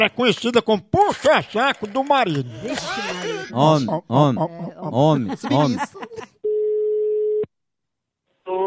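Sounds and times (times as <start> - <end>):
speech: 0.0 - 6.0
laughter: 1.7 - 6.4
telephone ringback tone of a call being placed: 6.4 - 7.4.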